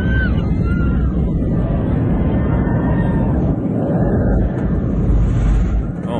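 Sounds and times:
steady airplane engine roar: 0.6s - 6.1s.

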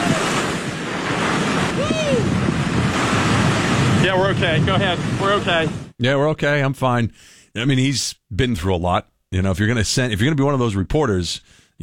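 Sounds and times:
heavy ocean wave crashing: 0.0s - 5.9s
wind buffeting the microphone: 0.0s - 6.0s
person's voice: 4.0s - 11.8s
speech: 4.2s - 11.8s.

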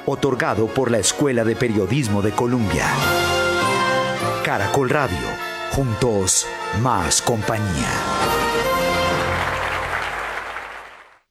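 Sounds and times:
speech: 0.0s - 3.4s, 4.4s - 8.7s
newsroom staff clapping: 8.0s - 11.3s.

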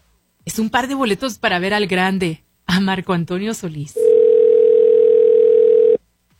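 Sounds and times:
speech: 0.5s - 4.1s
telephone ringback tone after a number is dialed: 4.0s - 6.0s.

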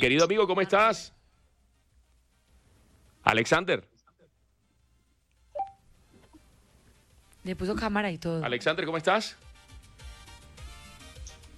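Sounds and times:
speech: 0.0s - 1.2s, 3.2s - 3.9s, 7.4s - 9.4s
faint low hum: 0.0s - 9.0s
phone keypad tone while placing a call: 5.6s - 5.8s.

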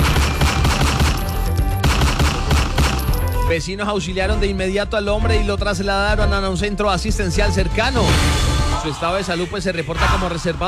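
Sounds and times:
gunshots in a rapid volley in a public street: 0.0s - 3.4s
speech: 3.5s - 10.6s.

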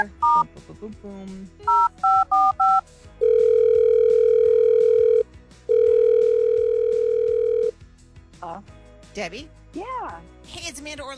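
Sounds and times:
speech: 0.0s - 3.1s, 8.4s - 11.1s
faint rhythmic beat: 0.0s - 11.1s
telephone ringing tone on the line: 1.7s - 7.7s.

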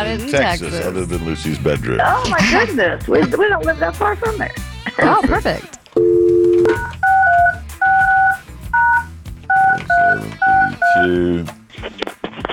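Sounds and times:
speech: 0.1s - 5.8s
touch-tone phone dialing beeps: 6.0s - 11.1s.

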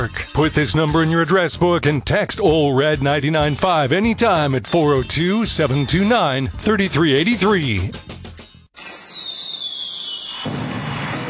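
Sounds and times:
speech: 0.0s - 8.1s
fireworks crackling bursts: 8.8s - 11.2s
whistling firework rocket falling in pitch: 8.8s - 11.2s.

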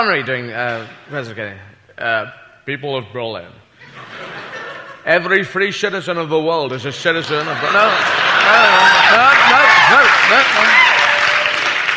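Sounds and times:
speech: 0.0s - 4.4s, 5.0s - 11.0s
laughter: 3.8s - 5.2s, 7.0s - 11.4s
large crowd applauding: 7.2s - 11.9s
whoops and voices: 8.4s - 11.8s.

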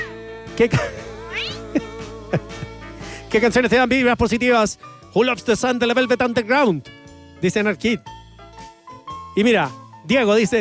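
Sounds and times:
speech: 0.6s - 1.0s, 3.3s - 8.2s, 9.4s - 10.5s
cat meowing: 1.2s - 1.6s.

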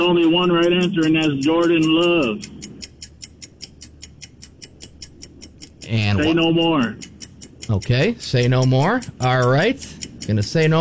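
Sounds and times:
speech: 0.0s - 2.6s, 5.9s - 7.1s, 7.7s - 10.7s
clock ticking as a countdown timer: 0.0s - 10.7s
faint low hum: 0.0s - 10.7s.

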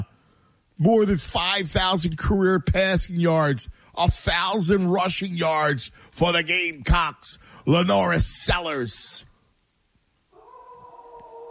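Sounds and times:
speech: 0.8s - 9.3s
dog howling: 10.3s - 11.5s.

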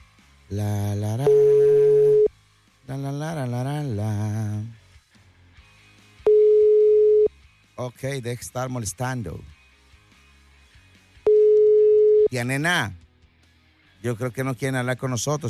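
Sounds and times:
speech: 0.5s - 1.6s, 2.9s - 4.7s, 7.8s - 9.6s, 12.3s - 13.0s, 14.0s - 15.4s
messaging app call ringing tone, steady electronic beep: 1.2s - 2.3s, 6.3s - 7.3s, 11.3s - 12.3s.

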